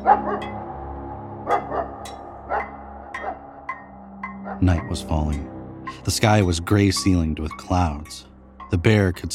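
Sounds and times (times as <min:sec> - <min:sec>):
hungry hunting dogs barking and yowling in the woods at nightfall: 0:00.0 - 0:04.9
drawn-out howling tone: 0:00.0 - 0:05.8
speech: 0:04.6 - 0:09.3.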